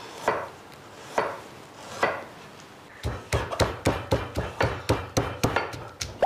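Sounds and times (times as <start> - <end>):
pestle pounding chopped chicken feet in a mortar: 3.0 - 6.2.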